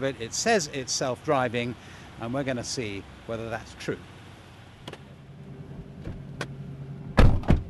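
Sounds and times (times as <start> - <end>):
speech: 0.0 - 4.1
door of a white self-driving car shutting: 6.0 - 7.6
heavier thump: 7.1 - 7.6.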